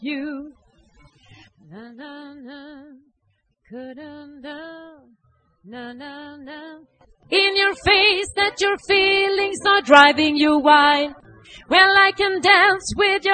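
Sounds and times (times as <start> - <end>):
alternate version of a song: 7.3 - 13.3.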